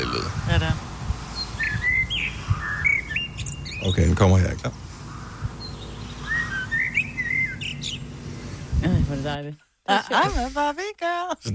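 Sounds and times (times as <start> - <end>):
speech: 0.0 - 0.9, 3.8 - 4.8, 8.8 - 11.5
blackbird singing a pop tune in whistled chirping phrases: 1.4 - 8.6.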